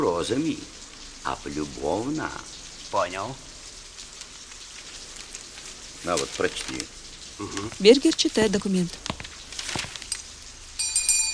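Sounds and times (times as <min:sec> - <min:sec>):
speech: 0:00.2 - 0:03.5, 0:06.0 - 0:09.1
faint rustling and soft movement noises: 0:03.6 - 0:10.4
small bell ringing: 0:10.8 - 0:11.3.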